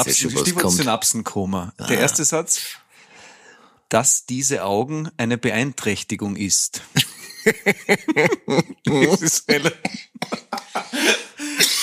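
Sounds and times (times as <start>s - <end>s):
speech: 0.0s - 2.9s, 3.9s - 11.8s
person laughing: 0.2s - 0.9s, 7.0s - 11.8s
person coughing: 0.3s - 0.9s, 8.1s - 11.8s.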